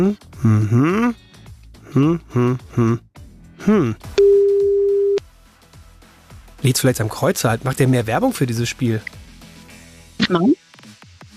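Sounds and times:
speech: 0.0 - 1.2, 1.9 - 4.1, 6.6 - 9.2, 10.3 - 10.6
telephone line tone after dialing a number: 4.2 - 5.2.

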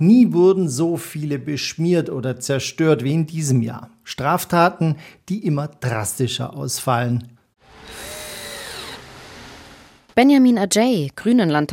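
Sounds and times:
speech: 0.0 - 8.2, 10.2 - 11.7
noise: 0.0 - 11.7
power driver screwing an election poster onto a wooden stand: 7.6 - 10.2.

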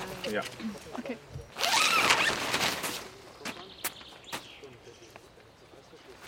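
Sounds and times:
speech: 0.3 - 1.3
tent zipper pulled open: 1.5 - 3.0.

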